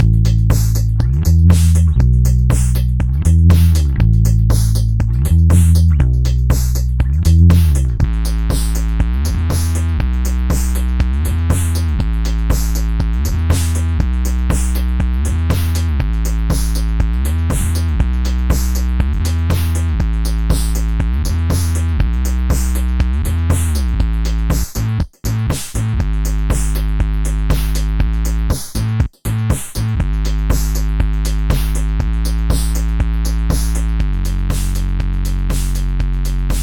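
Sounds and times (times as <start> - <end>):
bass through an Octavius Squeezer Super Squared fuzz: 0.0 - 36.6.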